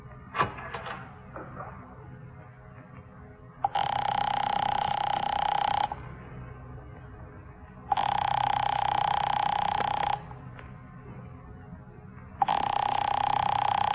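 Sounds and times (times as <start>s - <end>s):
faint low hum: 0.0s - 13.9s
telephone ringing with buzzy bell-like tone: 3.6s - 6.2s, 7.9s - 10.5s, 12.4s - 13.9s.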